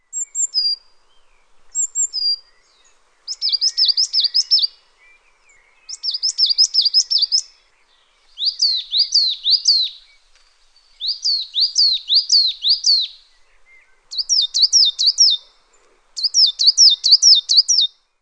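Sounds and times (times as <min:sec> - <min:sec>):
coal tit call: 0:03.2 - 0:04.8, 0:05.9 - 0:07.6, 0:08.4 - 0:10.2, 0:11.0 - 0:13.3, 0:14.1 - 0:17.9.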